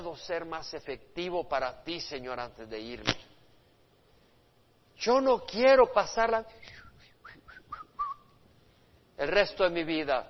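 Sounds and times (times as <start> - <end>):
speech: 0.1 - 3.3, 5.0 - 6.8, 9.2 - 10.2
person attempting to whistle: 6.6 - 8.4.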